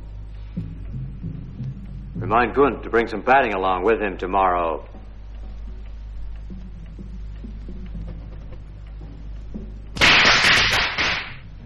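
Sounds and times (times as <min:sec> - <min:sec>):
low steady rumble with faint ticks: 0:00.0 - 0:10.0
speech: 0:02.2 - 0:04.9
firecrackers going off: 0:10.0 - 0:11.4.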